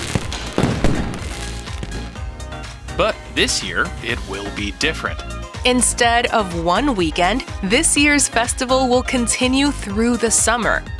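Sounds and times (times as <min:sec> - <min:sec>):
fireworks crackling and popping: 0:00.0 - 0:05.1
speech: 0:03.0 - 0:10.9.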